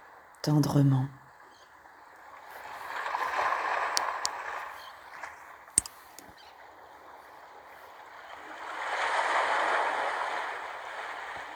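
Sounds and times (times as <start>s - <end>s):
ocean waves washing in and out: 0.0s - 11.5s
speech: 0.4s - 1.2s
faint clicks: 3.9s - 6.5s.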